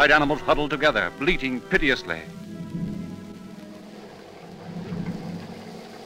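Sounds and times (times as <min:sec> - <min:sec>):
speech: 0:00.0 - 0:02.4
heavy rain in a thunderstorm: 0:00.0 - 0:06.0
deep rumbling thunder undertone: 0:02.3 - 0:06.0.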